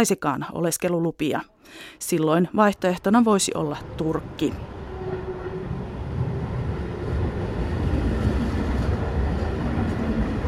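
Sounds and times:
speech: 0.0 - 4.8
train arriving at central station rumbling: 2.7 - 10.4.

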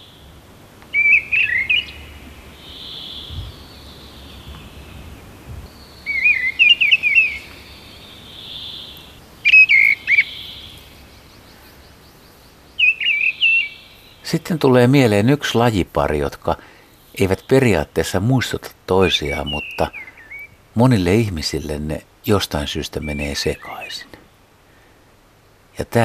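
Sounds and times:
mistle thrush singing: 0.0 - 15.6, 19.0 - 20.6, 22.6 - 24.2
blackbird singing: 0.9 - 24.2
speech: 14.3 - 20.0, 20.8 - 24.1, 25.8 - 26.0.

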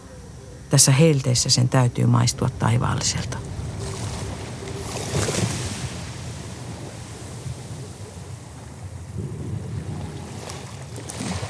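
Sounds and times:
speech: 0.7 - 3.6
wind buffeting the microphone: 2.2 - 11.4
Arabian Sea waves washing against the shore: 2.6 - 11.4.

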